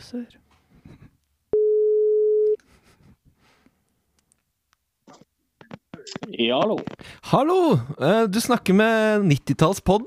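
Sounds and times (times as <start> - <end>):
speech: 0.0 - 1.0, 6.1 - 10.0
telephone ringing tone while a call connects: 1.6 - 2.6.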